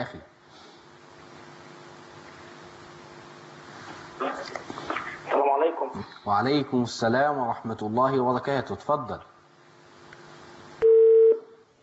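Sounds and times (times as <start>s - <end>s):
speech: 0.0s - 0.7s, 4.2s - 5.0s, 5.6s - 9.3s
telephone line tone after a call is cut off: 10.8s - 11.5s.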